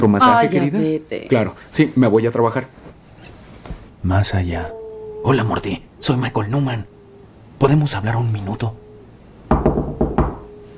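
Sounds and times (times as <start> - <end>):
speech: 0.0 - 2.8, 4.0 - 6.9, 7.6 - 8.8
firm knocks on a door: 9.5 - 10.5.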